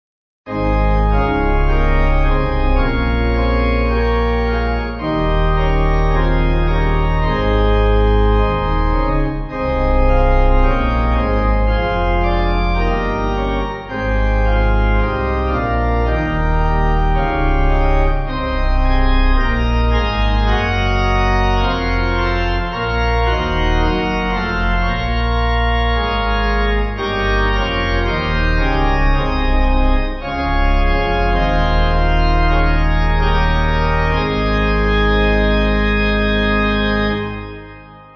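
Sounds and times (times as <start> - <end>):
hymn tune in A flat on a pipe organ: 0.5 - 38.1.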